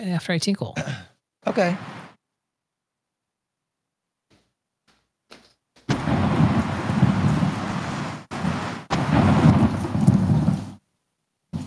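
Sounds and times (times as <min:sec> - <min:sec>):
speech: 0:00.0 - 0:01.9
rushing rain in a storm: 0:01.5 - 0:02.1, 0:05.9 - 0:10.8.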